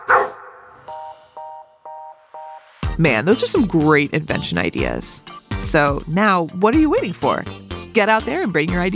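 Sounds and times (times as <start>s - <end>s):
single sharp dog bark: 0.0s - 0.8s
speech: 3.0s - 8.9s.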